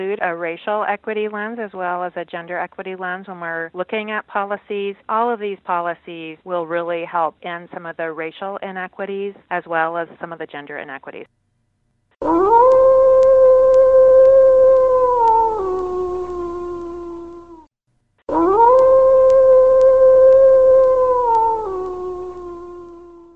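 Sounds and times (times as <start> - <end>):
speech: 0.0 - 11.4
wolves howling: 12.2 - 17.6, 18.3 - 23.3.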